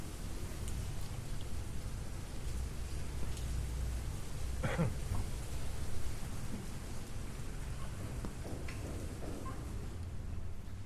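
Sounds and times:
heavy rain pouring down: 0.0 - 10.7.

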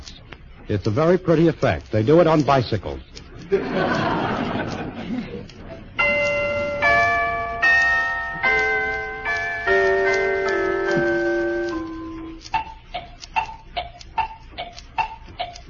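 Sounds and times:
clock ticking: 0.0 - 15.6
speech: 0.7 - 4.8
laughter: 3.3 - 6.0
ringing chime-like tones: 6.0 - 12.4.

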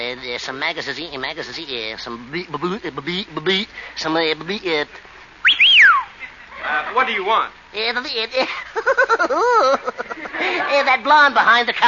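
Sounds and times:
speech: 0.1 - 5.7, 6.7 - 11.8
person whistling: 5.4 - 6.1
laughter: 8.4 - 10.9.

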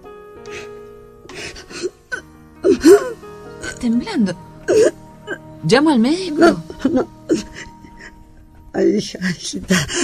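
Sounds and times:
woman sobbing: 1.4 - 5.4, 6.2 - 8.6, 9.2 - 10.0
speech: 3.8 - 4.9, 5.6 - 7.2, 8.8 - 10.0.

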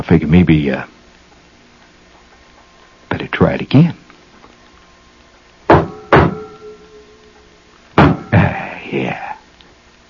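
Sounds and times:
speech: 0.0 - 1.0, 3.4 - 4.0
sharp loud knocking on a door: 5.7 - 6.4, 8.0 - 8.3
faint resonant ring: 5.9 - 8.4.

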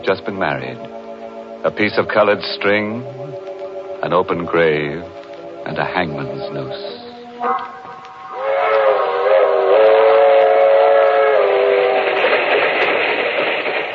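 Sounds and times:
speech: 0.0 - 1.0, 1.6 - 7.8
passenger train rumbling along the rails: 0.0 - 13.9
passenger train loud steady multi-tone whistle: 6.3 - 12.6.

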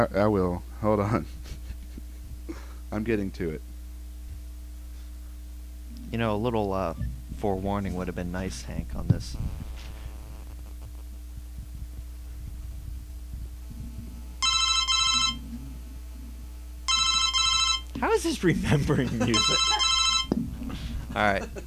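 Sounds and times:
speech: 0.0 - 1.6, 2.9 - 3.7, 6.1 - 9.7, 18.0 - 21.6
steady low hum: 0.6 - 21.6
telephone ringing in bright trilling bursts: 14.4 - 15.4, 16.9 - 17.9, 19.2 - 20.3
laughter: 18.4 - 20.0, 20.6 - 21.6.

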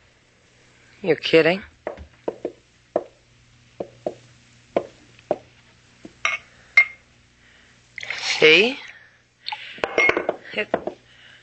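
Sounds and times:
faint steady hum: 0.0 - 11.4
speech: 1.0 - 1.7
glass clinking against a water pitcher on a table: 6.3 - 7.0, 9.8 - 10.4.

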